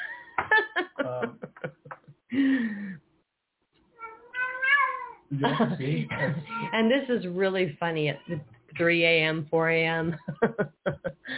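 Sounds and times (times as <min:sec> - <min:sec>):
laughter: 0:00.0 - 0:02.6, 0:05.3 - 0:06.8, 0:10.1 - 0:11.3
speech: 0:01.0 - 0:01.8, 0:05.4 - 0:11.2
person imitating a cat's meow: 0:04.0 - 0:05.2.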